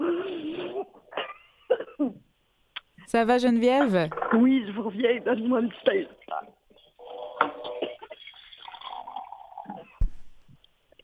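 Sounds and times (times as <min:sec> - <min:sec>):
person coughing: 0:00.5 - 0:02.2
speech: 0:03.1 - 0:06.2.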